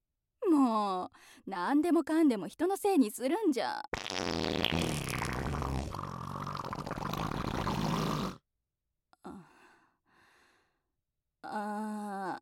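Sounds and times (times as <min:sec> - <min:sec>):
speech: 0:00.6 - 0:04.7, 0:11.5 - 0:12.4
fart: 0:03.9 - 0:08.4.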